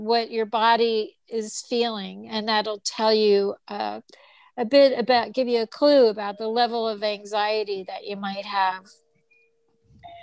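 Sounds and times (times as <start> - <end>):
speech: 0.0 - 9.0
thin beep-like tone: 9.2 - 10.2
doorbell chime: 9.3 - 10.2.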